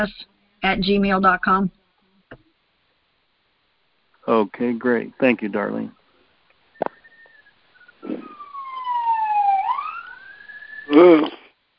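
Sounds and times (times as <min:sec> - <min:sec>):
speech: 0:00.0 - 0:01.8, 0:04.2 - 0:06.0, 0:10.9 - 0:11.4
police car siren wailing and warbling: 0:06.9 - 0:11.2.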